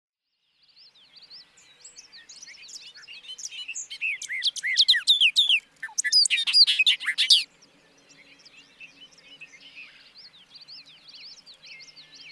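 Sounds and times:
quiet bird twittering: 0:00.4 - 0:12.3.

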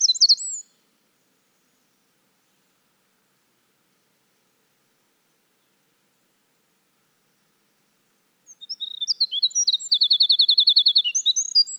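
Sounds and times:
Winter wren singing high rapid trills and twittering phrases: 0:00.0 - 0:00.7, 0:08.5 - 0:11.7.

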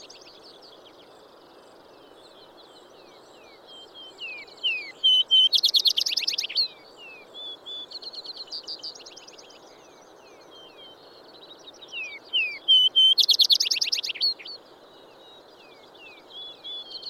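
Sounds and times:
steady low background hiss: 0:00.0 - 0:17.0
Vesper sparrow singing slurred whistled notes and buzzy trills: 0:04.2 - 0:06.7, 0:11.9 - 0:14.5.

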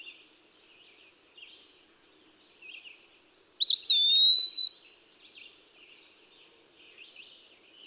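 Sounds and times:
Eastern wood-pewee whistled song: 0:03.6 - 0:04.8.

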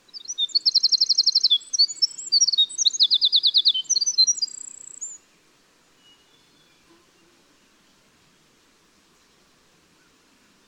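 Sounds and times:
winter wren singing: 0:00.0 - 0:05.2.

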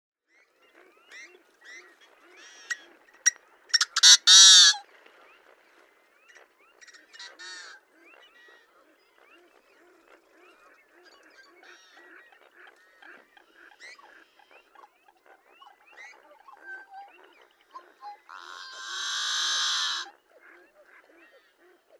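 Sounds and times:
Yellow-headed blackbird: 0:00.7 - 0:04.8, 0:09.8 - 0:21.8.

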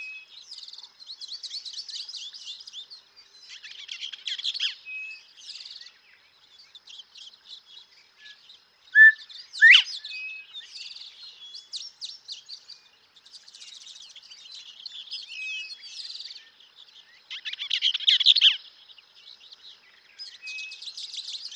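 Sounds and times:
small birds chirping and twittering: 0:00.0 - 0:21.5
Northern bobwhite whistled call with sharply rising whistle: 0:09.0 - 0:09.9.

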